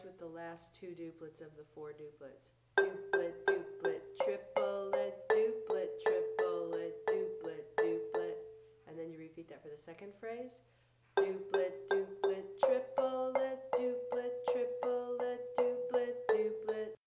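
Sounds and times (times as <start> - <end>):
high rolling sticking on marimba in Shona roll style: 2.8 - 8.7, 11.2 - 17.0.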